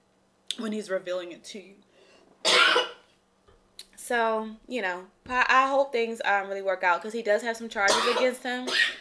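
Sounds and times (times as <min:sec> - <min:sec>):
speech: 0:00.6 - 0:02.8, 0:04.1 - 0:08.9
faint breath or small throat sound: 0:01.9 - 0:02.4
person coughing after drinking coffee: 0:02.4 - 0:03.0, 0:07.9 - 0:08.9.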